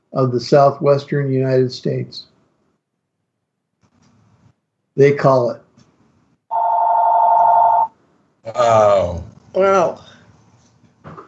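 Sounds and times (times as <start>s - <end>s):
speech: 0.2s - 2.3s, 5.0s - 5.6s, 8.4s - 10.1s
electronic telephone ring: 6.5s - 7.9s.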